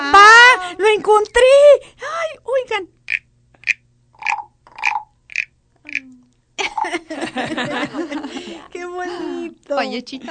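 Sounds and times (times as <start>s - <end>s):
speech: 1.0s - 3.0s, 6.8s - 10.2s
toad croaking: 3.1s - 6.1s
laughter: 6.6s - 9.5s.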